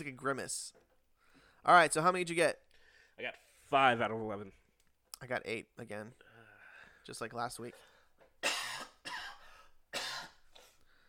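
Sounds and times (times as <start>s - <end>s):
speech: 0.0s - 0.8s, 1.6s - 2.6s, 3.2s - 4.6s, 5.2s - 6.2s, 7.0s - 7.9s
harsh coughs: 8.4s - 10.8s
raspy breath or throat clearing: 8.4s - 10.8s.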